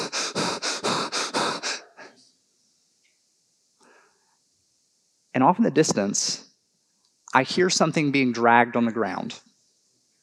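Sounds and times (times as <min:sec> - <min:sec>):
person imitating very heavy breathing: 0:00.0 - 0:02.2
speech: 0:05.4 - 0:06.5, 0:07.4 - 0:09.5.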